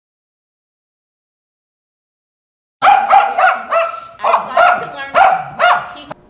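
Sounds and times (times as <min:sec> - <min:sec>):
dog barking: 0:02.8 - 0:06.1.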